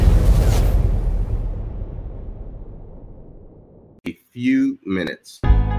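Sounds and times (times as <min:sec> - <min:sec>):
explosion sound effect: 0:00.0 - 0:04.0
speech: 0:04.1 - 0:05.6.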